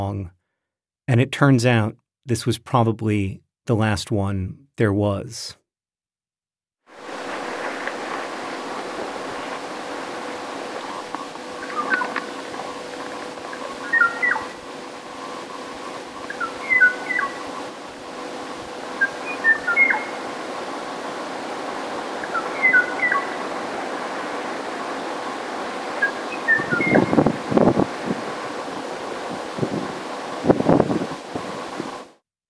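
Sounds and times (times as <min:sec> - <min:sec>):
speech: 0:00.0 - 0:00.4, 0:01.1 - 0:05.6
steady hiss: 0:06.9 - 0:32.1
wind: 0:06.9 - 0:32.2
o'o bird calling in short clear phrases: 0:07.2 - 0:32.0.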